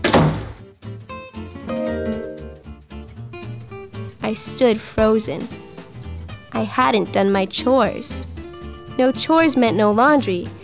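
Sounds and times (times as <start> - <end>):
bathroom closet door flung open: 0.0 - 0.6
speech: 4.3 - 5.6, 6.6 - 8.3, 9.0 - 10.6.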